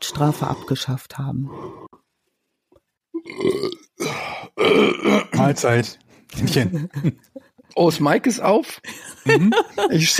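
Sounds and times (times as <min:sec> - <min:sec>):
speech: 0:00.1 - 0:02.0, 0:04.6 - 0:10.1
long loud burp: 0:03.2 - 0:05.5
laughter: 0:06.4 - 0:07.6, 0:08.8 - 0:10.1.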